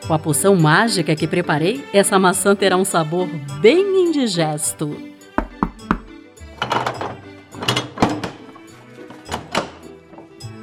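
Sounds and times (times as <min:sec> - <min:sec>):
busier tonal background: 0:00.0 - 0:08.4
speech: 0:00.1 - 0:05.1
knocking on the door of a house: 0:05.4 - 0:06.2.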